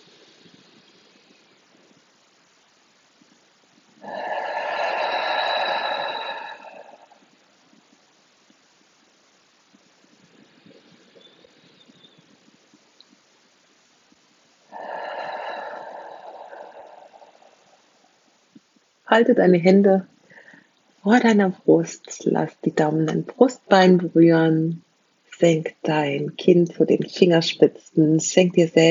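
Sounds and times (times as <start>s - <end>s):
deep slow breathing during a relaxation exercise: 4.0s - 7.4s, 14.7s - 18.3s, 20.2s - 20.8s
speech: 19.1s - 20.1s, 21.1s - 24.8s, 25.4s - 28.8s.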